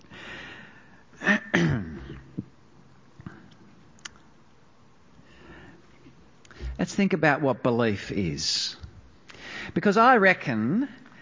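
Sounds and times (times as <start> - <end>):
person with a blocked throat coughing harshly: 1.2 - 2.3
throat clearing: 1.2 - 2.3
speech: 7.0 - 8.8, 9.8 - 11.0.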